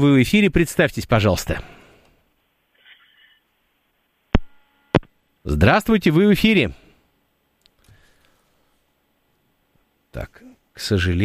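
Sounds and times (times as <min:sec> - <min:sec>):
speech: 0:00.0 - 0:01.8, 0:05.4 - 0:06.8, 0:10.1 - 0:11.2
quiet telephone line hiss: 0:02.7 - 0:03.5.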